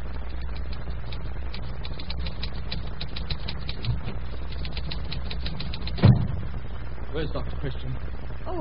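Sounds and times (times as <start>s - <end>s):
low constant hum: 0.0s - 8.5s
typewriter typing: 0.6s - 6.1s
speech: 7.2s - 8.5s.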